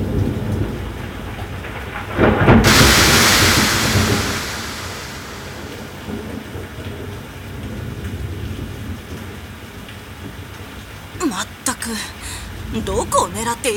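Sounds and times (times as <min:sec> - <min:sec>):
steady rain: 0:00.0 - 0:13.7
thunderclap rolling into a long rumble: 0:01.8 - 0:06.4
speech: 0:12.8 - 0:13.7.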